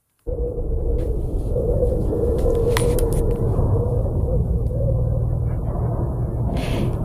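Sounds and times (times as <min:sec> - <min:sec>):
crackles: 0:00.0 - 0:07.0
faint windy hiss: 0:00.1 - 0:07.0
deep steady rumble from the planet Mars: 0:00.2 - 0:07.0.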